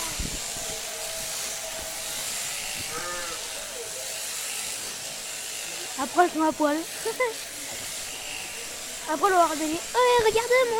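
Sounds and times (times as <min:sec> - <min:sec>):
electric sheep-shearing clippers buzzing on shearing day: 0:00.0 - 0:10.7
sheep bleating during shearing: 0:02.6 - 0:03.9
speech: 0:06.0 - 0:07.5, 0:09.1 - 0:10.7.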